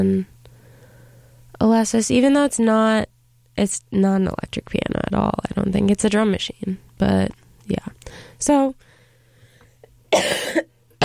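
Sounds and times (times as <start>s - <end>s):
speech: 0.0s - 0.3s, 1.6s - 3.0s, 3.6s - 8.9s, 10.1s - 11.0s
person getting over a cold coughing harshly: 10.1s - 11.0s.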